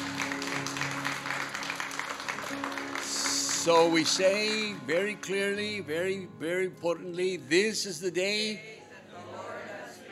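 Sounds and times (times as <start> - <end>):
crowd clapping: 0.0 - 5.7
speech: 3.6 - 8.8.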